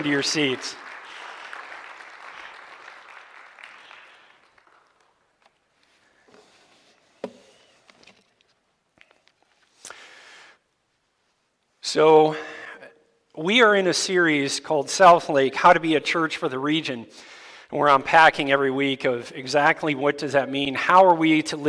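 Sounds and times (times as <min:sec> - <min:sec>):
speech: 0:00.0 - 0:00.8, 0:11.9 - 0:12.5, 0:13.4 - 0:21.6
audience clapping: 0:00.0 - 0:05.7.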